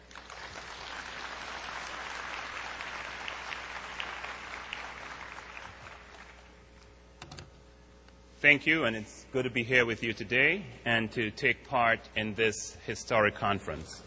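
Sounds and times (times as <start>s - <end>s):
audience applause welcoming a speaker at a conference on health disparities: 0.0s - 6.5s
speech: 8.4s - 14.0s.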